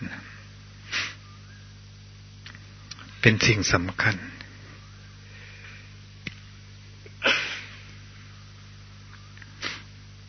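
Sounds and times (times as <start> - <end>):
low steady hum: 0.0 - 10.2
sniff: 0.8 - 1.2, 9.6 - 9.9
person sneezing: 0.9 - 1.2, 7.2 - 7.9, 9.6 - 9.9
speech: 3.2 - 4.4.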